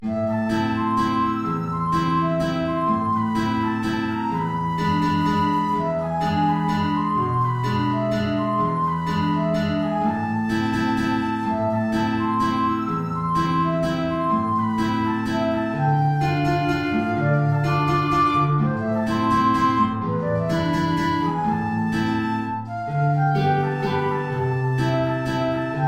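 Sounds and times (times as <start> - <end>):
guitar: 0.0 - 25.8
transverse flute: 0.0 - 25.8.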